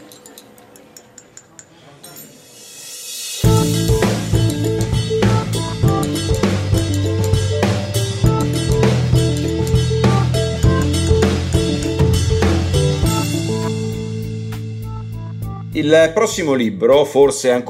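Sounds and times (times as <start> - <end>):
upbeat podcast theme jingle with drums, bassline and synth chords: 3.3 - 16.5
speech: 15.8 - 17.6.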